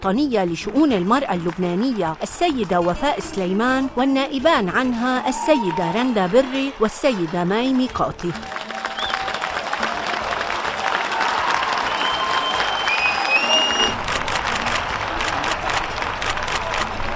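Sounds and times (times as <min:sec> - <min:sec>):
speech: 0:00.0 - 0:08.6
audience applause at a medal ceremony for women soldiers: 0:05.3 - 0:17.1.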